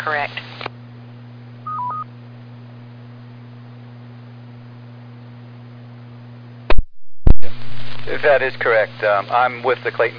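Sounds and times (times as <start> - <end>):
speech: 0.0 - 0.5, 8.1 - 10.1
steady low hum: 0.0 - 10.1
fire department pager alert tones: 1.7 - 2.0.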